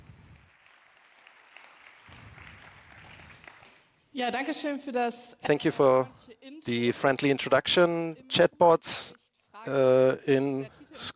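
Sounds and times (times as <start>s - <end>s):
crowd applauding: 0.0s - 4.0s
speech: 4.2s - 11.1s.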